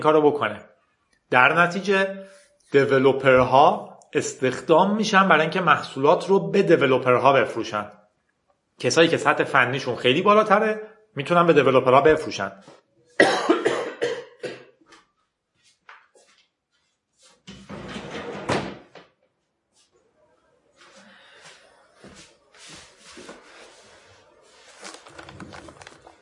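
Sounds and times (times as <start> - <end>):
speech: 0.0 - 0.7, 1.3 - 8.0, 8.8 - 12.9
person coughing harshly: 13.2 - 14.8
rustling and shuffling: 14.8 - 18.2, 19.2 - 26.1.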